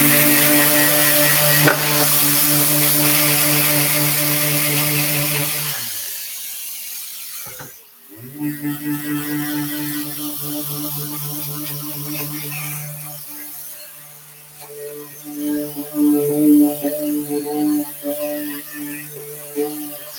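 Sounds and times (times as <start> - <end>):
power sander whirring against a cabinet surface: 0.0 - 20.1.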